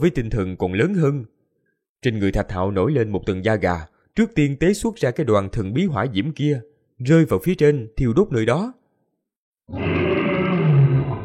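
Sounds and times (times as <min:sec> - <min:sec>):
speech: 0:00.0 - 0:01.4, 0:02.0 - 0:08.8, 0:09.7 - 0:10.0
huge creature roaring with a deep growling tone: 0:09.7 - 0:11.2.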